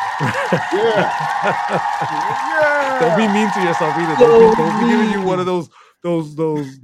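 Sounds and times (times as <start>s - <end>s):
crowd applause: 0.0s - 5.6s
excited voices and whoops: 0.0s - 5.6s
laughter: 0.0s - 5.6s
speech: 0.2s - 6.8s.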